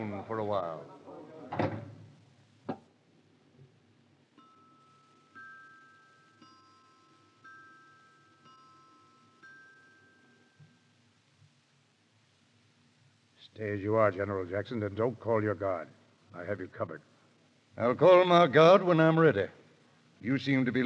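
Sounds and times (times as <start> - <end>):
speech: 0.1 - 1.7, 13.5 - 17.1, 17.8 - 19.6, 20.2 - 20.8
door shutting with a solid thud: 1.5 - 2.1.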